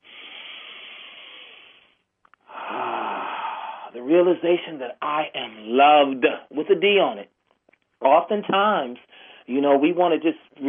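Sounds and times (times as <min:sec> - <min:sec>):
people taking a deep breath together: 0:00.0 - 0:04.0
speech: 0:03.9 - 0:07.4, 0:08.0 - 0:10.6.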